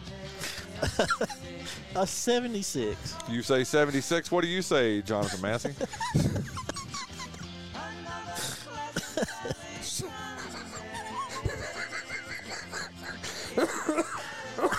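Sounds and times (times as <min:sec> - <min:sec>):
man coughing harshly and laughing: 0:00.6 - 0:01.5, 0:05.2 - 0:07.4, 0:08.4 - 0:14.7
speech: 0:00.8 - 0:06.4.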